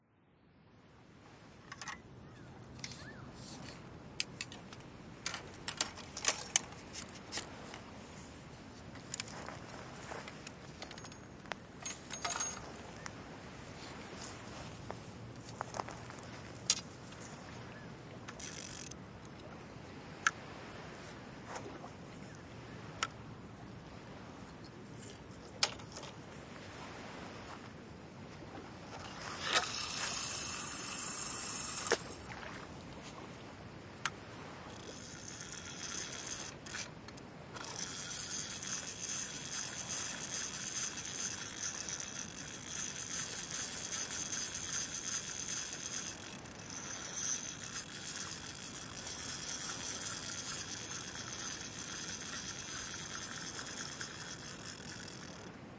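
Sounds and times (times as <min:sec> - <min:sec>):
fishing rod: 0:01.6 - 0:23.2, 0:23.8 - 0:55.6.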